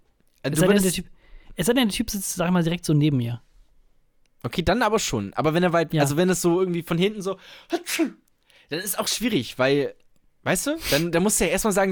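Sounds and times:
speech: 0.4 - 3.5, 4.4 - 11.9
voice imitating a sneeze: 7.7 - 8.2.

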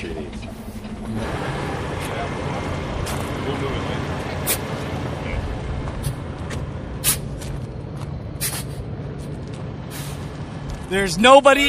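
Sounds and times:
2022 Peterbilt 389 semi truck diesel engine rumbling while shifting gears: 0.0 - 11.6
bursts of air hissing from a semi truck: 7.0 - 7.3, 8.4 - 8.9, 9.9 - 10.3
speech: 10.9 - 11.6.

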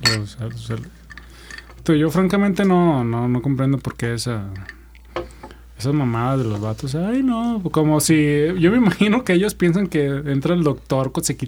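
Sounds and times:
glasses of beer clinking in a toast: 0.0 - 3.0, 4.5 - 5.7
speech: 0.1 - 4.8, 5.8 - 11.4.

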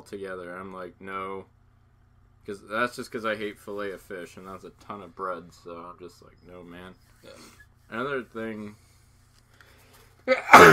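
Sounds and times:
speech: 0.0 - 1.6, 2.4 - 8.9, 10.3 - 10.7
single loud sneeze: 10.3 - 10.7.

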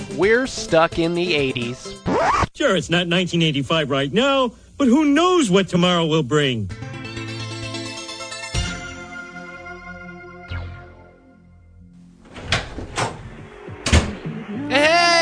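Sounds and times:
sustained music: 0.0 - 2.5, 6.4 - 15.2
speech: 0.2 - 6.8
door being unlocked with a copied key and opened: 12.2 - 14.2.

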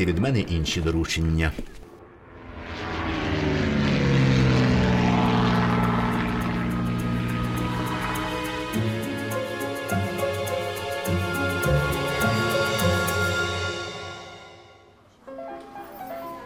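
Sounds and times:
speech: 0.0 - 1.8
propeller airplane engine droning: 1.7 - 14.3.

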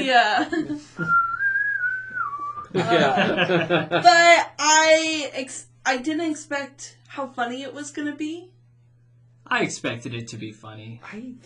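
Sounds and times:
laughter: 0.0 - 1.1, 2.7 - 4.3
speech: 0.0 - 1.2, 2.7 - 8.6, 9.5 - 11.4
woman whistling a long note in a film scene: 1.0 - 2.8.

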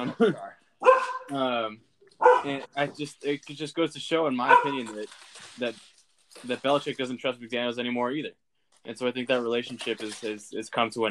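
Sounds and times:
speech: 0.0 - 11.0
dogs barking: 0.8 - 1.3, 2.2 - 2.7, 4.4 - 5.0
dog whine-like howl: 4.5 - 4.8.

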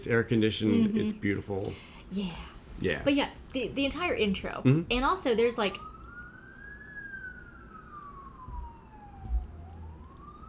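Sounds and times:
speech: 0.0 - 5.9
ambulance siren passing outside: 4.9 - 10.4.

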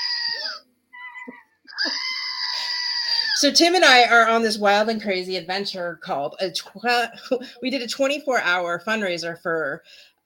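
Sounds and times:
screaming goat novelty toy: 0.0 - 3.4
speech: 3.4 - 10.2.

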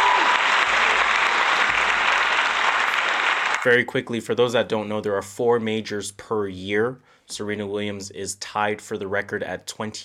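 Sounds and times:
crowd clapping: 0.0 - 3.7
speech: 3.6 - 10.0.

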